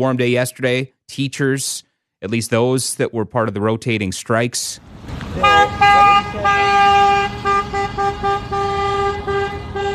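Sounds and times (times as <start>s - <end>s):
speech: 0.0s - 6.6s
busy street murmur: 4.6s - 9.9s
several vehicle horns honking: 5.3s - 9.9s.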